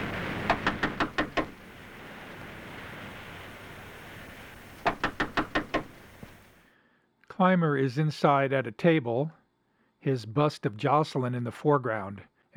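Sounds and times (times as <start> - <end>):
windy surf-like rumble: 0.0 - 6.6
sharp knocks on a door: 0.5 - 1.6, 4.8 - 6.4
speech: 7.4 - 9.4, 10.0 - 12.5.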